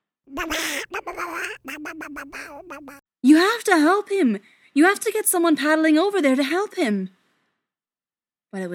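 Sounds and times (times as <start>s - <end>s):
duck quacking loudly: 0.4s - 3.0s
speech: 0.4s - 7.2s, 8.5s - 8.7s.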